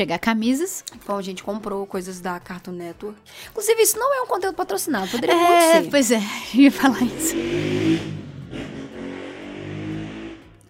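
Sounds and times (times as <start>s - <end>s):
speech: 0.0s - 8.2s
laughter: 5.1s - 6.0s
motorcycle engine revving outside: 6.8s - 10.6s.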